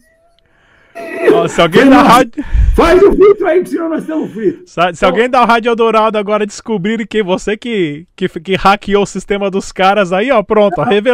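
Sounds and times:
voice imitating modem data modulation tone: 0.0s - 0.4s, 1.0s - 2.1s, 10.6s - 11.0s
speech: 1.3s - 11.1s.

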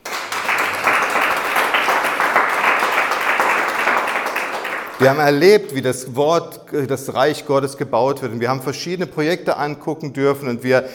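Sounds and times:
crowd applause: 0.0s - 5.2s
speech: 5.0s - 10.9s.

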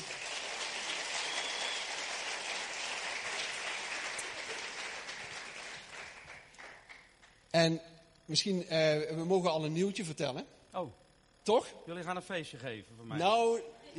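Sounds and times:
audience applause: 0.0s - 7.3s
speech: 7.6s - 13.9s.

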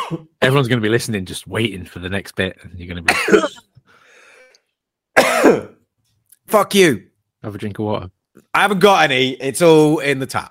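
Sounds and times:
rough cough or throat-clear with raspy voiced tone: 0.0s - 0.4s, 3.1s - 3.6s, 5.2s - 5.8s
speech: 0.1s - 3.7s, 5.5s - 5.7s, 6.5s - 10.5s.

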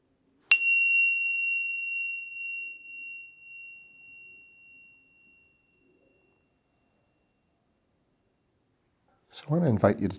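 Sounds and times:
meditation bell ringing: 0.5s - 7.7s
speech: 9.4s - 10.1s.

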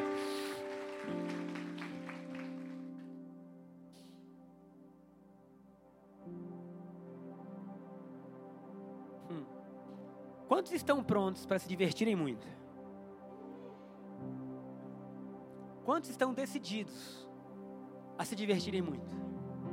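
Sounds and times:
crowd clapping energetically: 0.0s - 3.2s
sustained keyboard chords with a steady drone: 0.0s - 19.7s
speech: 10.5s - 12.6s, 16.0s - 17.3s, 18.2s - 19.4s.

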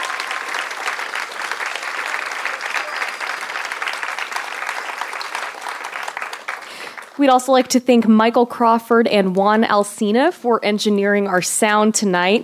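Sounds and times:
audience applause at an evening community event: 0.0s - 7.3s
speech: 7.2s - 12.4s.

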